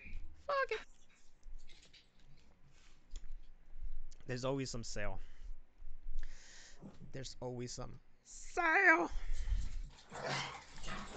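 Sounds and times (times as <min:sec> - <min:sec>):
speech: 0:00.6 - 0:00.9, 0:04.3 - 0:05.3, 0:07.1 - 0:09.3
dogs barking and yelping: 0:10.0 - 0:11.1.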